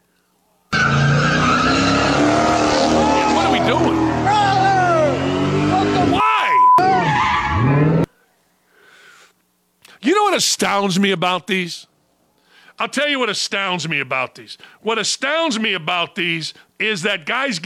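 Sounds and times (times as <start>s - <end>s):
car skidding with tire squeals: 0.7s - 6.2s, 6.8s - 8.1s
speech: 10.4s - 11.9s, 12.8s - 17.6s.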